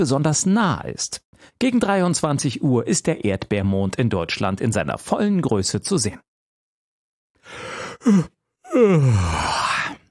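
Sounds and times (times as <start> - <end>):
speech: 0.0 - 6.3, 7.5 - 9.9
person yawning: 7.5 - 10.0.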